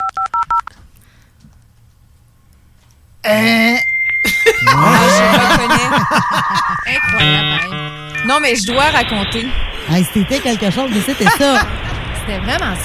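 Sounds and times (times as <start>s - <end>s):
dial-up modem handshake with whistling tones, screeches and hissing static: 0.0s - 0.7s
touch-tone dialing beeps: 0.0s - 0.7s, 5.9s - 8.8s
speech: 3.3s - 3.8s, 6.0s - 12.8s
laughter: 4.3s - 7.6s, 10.9s - 12.0s.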